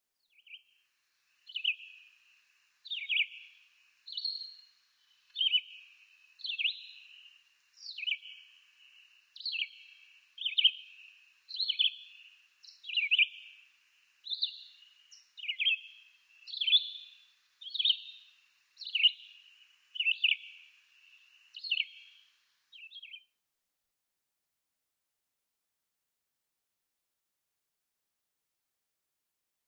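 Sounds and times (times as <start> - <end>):
Red-eyed Vireo singing: 0.2 - 0.8, 1.4 - 2.2, 2.8 - 23.3.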